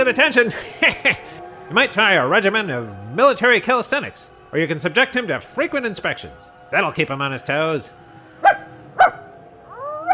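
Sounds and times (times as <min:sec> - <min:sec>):
laughter: 0:00.0 - 0:02.6
speech: 0:00.0 - 0:08.6
small dog barking and yipping: 0:08.4 - 0:10.1.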